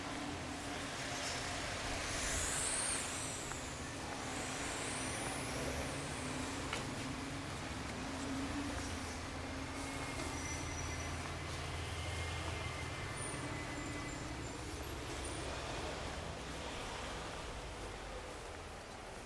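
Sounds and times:
busy street traffic and engine rumble: 0:00.0 - 0:19.2
brief high squeal: 0:02.0 - 0:06.6, 0:08.8 - 0:15.8.

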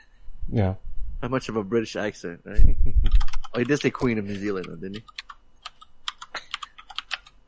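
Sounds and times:
speech: 0:00.5 - 0:05.3
typing on a computer keyboard: 0:03.1 - 0:07.4.

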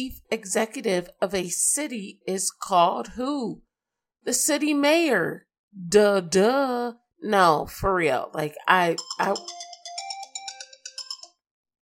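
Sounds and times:
speech: 0:00.0 - 0:09.7
bright electronic phone ringtone jingle: 0:08.8 - 0:11.5.

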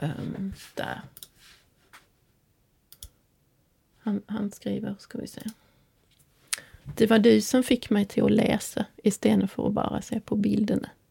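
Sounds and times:
speech: 0:00.0 - 0:01.6, 0:04.0 - 0:05.6, 0:06.9 - 0:11.0
soft rustle: 0:00.0 - 0:02.4
computer mouse clicks: 0:02.9 - 0:03.2, 0:05.3 - 0:05.6.

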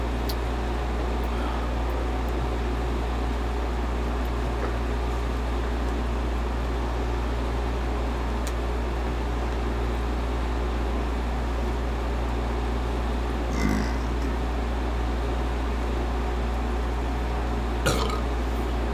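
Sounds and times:
droning hum: 0:00.0 - 0:18.9
short burps: 0:13.5 - 0:14.3, 0:17.8 - 0:18.3.

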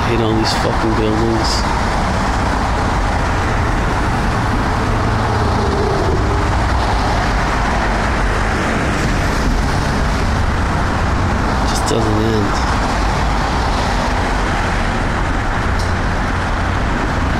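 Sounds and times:
road traffic roar of passing cars: 0:00.0 - 0:17.3
speech: 0:00.1 - 0:02.1.

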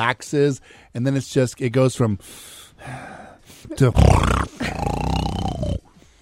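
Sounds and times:
speech: 0:00.0 - 0:05.0
voice imitating loud raspy snoring: 0:03.8 - 0:06.0.

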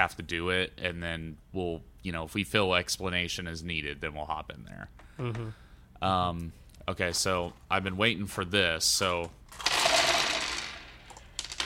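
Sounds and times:
speech: 0:00.0 - 0:09.7
pile of dice clattering and rattling across a hard tabletop: 0:09.5 - 0:11.6.

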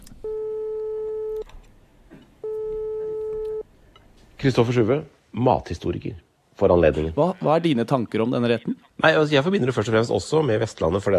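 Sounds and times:
telephone ringing tones while placing a call: 0:00.2 - 0:01.4, 0:02.4 - 0:03.6
speech: 0:04.4 - 0:11.1.

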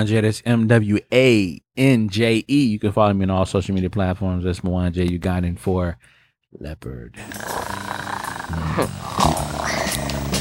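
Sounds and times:
speech: 0:00.0 - 0:07.9, 0:08.5 - 0:10.1
domestic cat growling yowl: 0:07.6 - 0:10.0.

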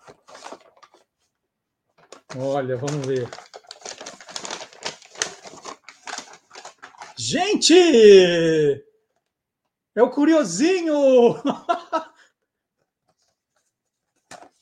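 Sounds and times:
bag rustling and crinkling as it is pulled open: 0:00.0 - 0:01.1, 0:02.0 - 0:07.2
speech: 0:02.3 - 0:03.5, 0:07.3 - 0:08.9, 0:10.0 - 0:12.0
laughter: 0:11.4 - 0:12.2.

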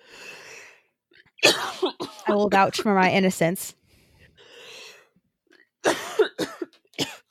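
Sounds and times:
soft breathy inhale: 0:00.0 - 0:00.9, 0:03.8 - 0:05.2
person coughing harshly: 0:01.4 - 0:02.7, 0:05.8 - 0:07.2
speech: 0:01.6 - 0:03.8.

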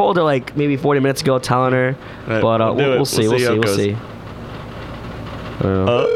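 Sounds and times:
speech: 0:00.0 - 0:04.1, 0:05.6 - 0:06.1
higher tone: 0:02.8 - 0:04.0
telephone ringback tone on an outgoing call: 0:05.9 - 0:06.1.

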